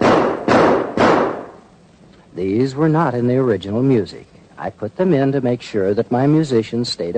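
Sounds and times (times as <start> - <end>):
loud gunshots in music: 0.0 - 1.6
speech: 2.4 - 7.1.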